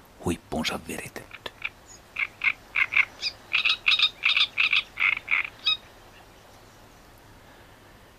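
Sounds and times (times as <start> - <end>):
speech: 0.2 - 1.3
great reed warbler singing: 0.6 - 7.2.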